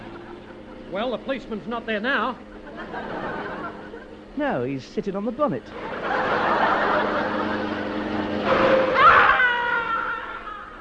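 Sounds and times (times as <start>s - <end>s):
laughter: 0.0s - 1.3s, 2.2s - 4.4s, 5.7s - 10.7s
car brakes squealing sharply: 0.0s - 10.7s
car engine rumbling: 0.0s - 10.7s
speech: 0.9s - 3.3s, 4.4s - 5.9s.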